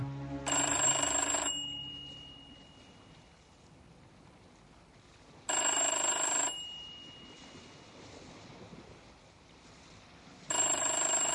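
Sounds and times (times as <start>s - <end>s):
low rumbling watery hum: 0.0s - 5.5s, 6.6s - 10.5s
old-style telephone bell ringing: 0.5s - 2.6s, 5.5s - 7.2s, 10.5s - 11.3s.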